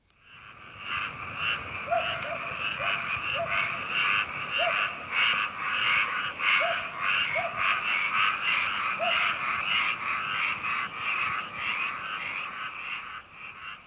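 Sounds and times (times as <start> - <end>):
frogs croaking in short low calls: 0.1 - 13.8.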